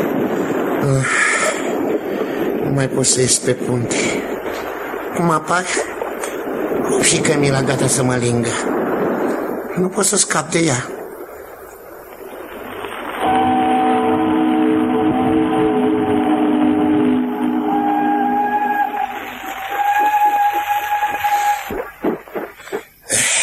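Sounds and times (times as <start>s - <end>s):
train rumbling along with steady mechanical noise: 0.0s - 10.2s, 10.8s - 23.4s
speech: 0.8s - 1.3s, 2.8s - 4.4s, 5.2s - 6.0s, 6.7s - 9.0s, 9.8s - 11.0s
long tonal horn-like drone: 13.2s - 21.9s.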